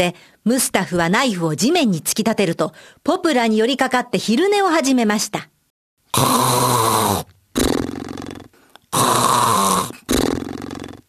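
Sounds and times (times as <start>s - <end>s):
speech: 0.0s - 5.5s, 6.1s - 7.3s
loud heavy snoring: 6.1s - 11.0s.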